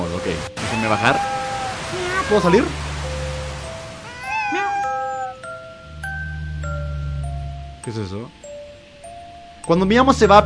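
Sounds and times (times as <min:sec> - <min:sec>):
low steady hum: 0:00.0 - 0:10.4
speech: 0:00.2 - 0:01.4, 0:02.3 - 0:02.9, 0:07.9 - 0:08.4, 0:09.6 - 0:10.4
cat meowing: 0:00.6 - 0:02.8, 0:04.0 - 0:05.5.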